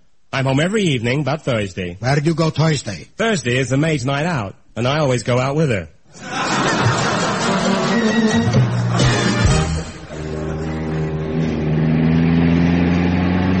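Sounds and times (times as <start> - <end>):
speech: 0.4 - 6.4
laughter: 6.1 - 11.3
car engine roaring while driven fast in a race on Long Island: 8.4 - 13.5.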